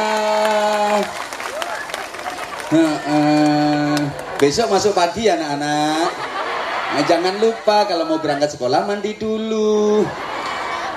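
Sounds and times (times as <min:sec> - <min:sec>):
schoolchildren clapping together in a classroom: 0:00.0 - 0:04.7
laughter: 0:02.3 - 0:08.5, 0:09.7 - 0:10.9
speech: 0:02.7 - 0:03.5, 0:04.4 - 0:06.2, 0:06.9 - 0:10.3.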